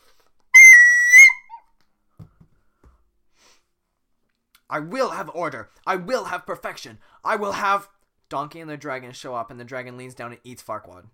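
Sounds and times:
person whistling in an animated film scene: 0.6s - 1.6s
speech: 4.7s - 11.1s.

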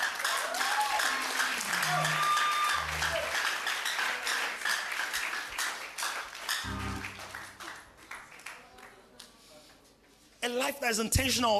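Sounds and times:
large crowd applauding: 0.0s - 9.1s
low organ or keyboard notes: 1.8s - 3.4s, 6.7s - 8.1s
speech: 10.7s - 11.5s.

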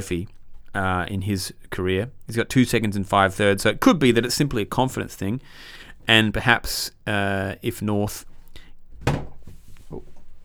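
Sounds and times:
speech: 0.0s - 8.3s
faint low rumble of noise: 0.0s - 10.4s
soft knocks: 8.9s - 10.4s
heavy thud of someone falling over: 9.0s - 10.0s.

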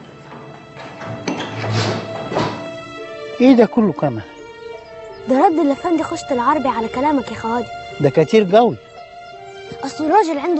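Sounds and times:
door swinging shut: 0.0s - 3.0s
latch-like clunk: 0.0s - 3.0s
soft knocks: 0.0s - 3.0s
speech: 3.4s - 4.3s, 5.3s - 8.9s, 9.8s - 10.5s.

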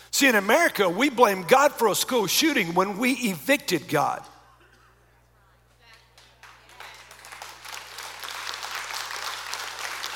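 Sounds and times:
speech: 0.2s - 4.3s
light polite golf clap from an audience: 6.0s - 10.1s.

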